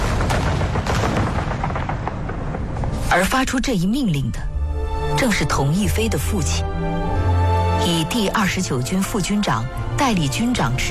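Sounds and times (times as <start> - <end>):
dense battlefield gunfire: 0.0 - 3.1
heavy artillery booms: 0.0 - 3.1
speech: 3.1 - 4.5, 5.2 - 7.1, 7.8 - 10.8.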